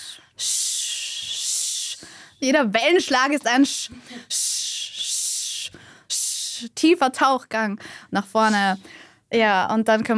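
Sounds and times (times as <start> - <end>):
person making a steady shh hiss as a breathing exercise: 0.0 - 2.4, 3.0 - 6.8, 8.4 - 8.9
speech: 2.4 - 4.4, 6.6 - 10.1.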